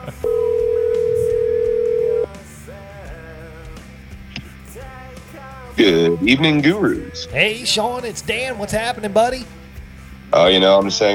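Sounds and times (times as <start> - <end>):
musical backing: 0.0 - 11.1
telephone ring tone on the line: 0.2 - 2.3
speech: 5.8 - 9.6, 10.3 - 11.1.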